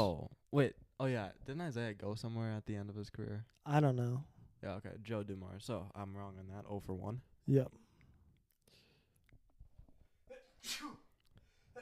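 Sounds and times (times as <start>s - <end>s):
speech: 0.0s - 7.8s, 10.6s - 11.0s
sneeze: 10.3s - 11.2s.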